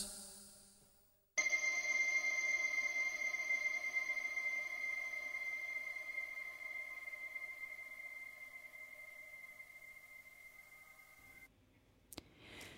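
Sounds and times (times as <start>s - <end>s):
sustained electronic synth chord: 1.4s - 11.5s.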